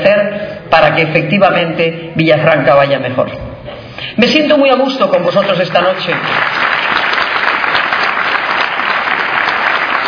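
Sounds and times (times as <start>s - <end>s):
speech: 1.0s - 6.8s
large crowd applauding at a political rally: 6.0s - 10.0s.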